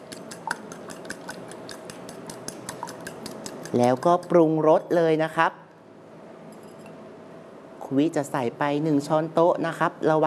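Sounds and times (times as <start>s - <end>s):
fork gently beating ingredients in a bowl: 0.0s - 4.4s
speech: 3.7s - 5.6s, 7.9s - 10.2s.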